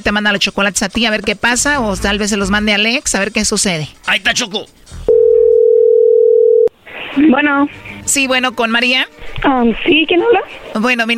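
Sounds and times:
speech: 0:00.0 - 0:04.9, 0:07.2 - 0:11.1
telephone ringing tone while placing a call: 0:05.1 - 0:06.7.

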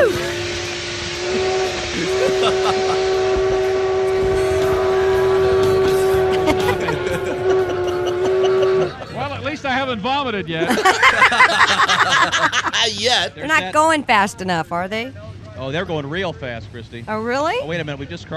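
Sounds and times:
speech: 0:00.0 - 0:00.3, 0:09.4 - 0:18.3
train whistle blowing: 0:00.0 - 0:09.5
rumbling hissing noise: 0:00.0 - 0:18.3
laughter: 0:02.0 - 0:03.5, 0:05.8 - 0:13.6.

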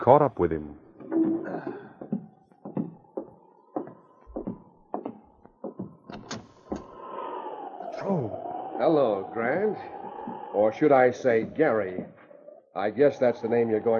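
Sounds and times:
speech: 0:00.0 - 0:01.9, 0:08.1 - 0:10.0, 0:10.6 - 0:12.2, 0:12.8 - 0:13.9
sharp hollow knocks on a wooden cabin door: 0:02.0 - 0:06.0.

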